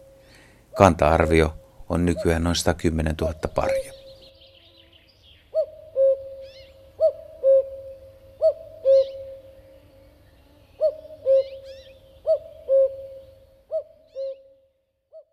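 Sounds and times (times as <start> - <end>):
faint twittering of other birds: 0.0 - 14.6
speech: 0.8 - 4.0
common cuckoo two-note call: 3.9 - 10.1, 10.7 - 15.3.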